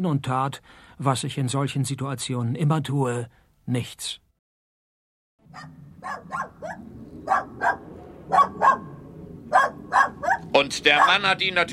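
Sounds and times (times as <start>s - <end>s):
speech: 0.0s - 4.2s, 5.5s - 11.7s
police dog barking: 5.5s - 11.3s.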